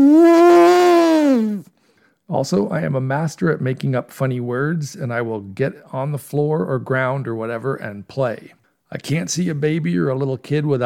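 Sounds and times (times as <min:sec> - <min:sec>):
person imitating an elephant's trumpet: 0:00.0 - 0:01.7
speech: 0:02.3 - 0:10.8.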